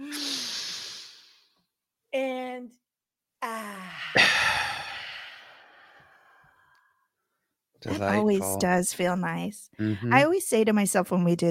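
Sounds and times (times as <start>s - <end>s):
person inhaling deeply: 0.0s - 1.5s, 4.0s - 7.0s
speech: 7.9s - 11.5s.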